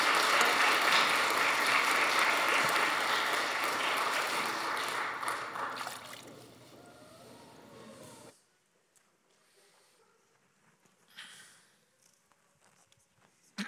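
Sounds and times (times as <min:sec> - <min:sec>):
crowd of many hands clapping: 0:00.0 - 0:06.6.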